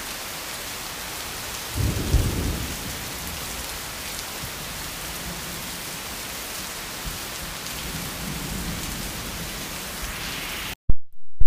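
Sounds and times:
heavy storm rain pouring, heard from a cottage porch: 0:00.0 - 0:10.8
deep rumble of thunder: 0:01.7 - 0:03.6, 0:07.8 - 0:10.5.

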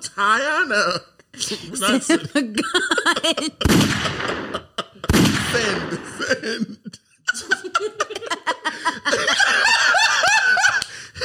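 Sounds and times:
people talking: 0:00.0 - 0:11.2
people chuckling: 0:01.3 - 0:11.2
loud sharp gunshot blasts: 0:03.6 - 0:06.2.

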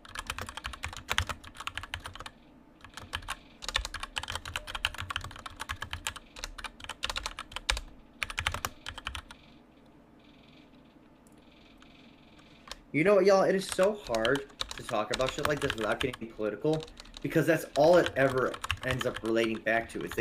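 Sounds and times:
fast typing on a computer keyboard: 0:00.0 - 0:09.4, 0:13.7 - 0:20.1
speech: 0:12.9 - 0:20.1.

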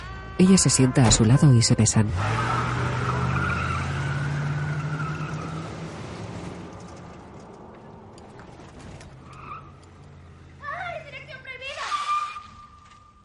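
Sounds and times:
car tires skidding: 0:00.0 - 0:07.3, 0:08.8 - 0:13.2
speech: 0:00.4 - 0:02.8
car engine revving while reversing: 0:01.8 - 0:08.2.

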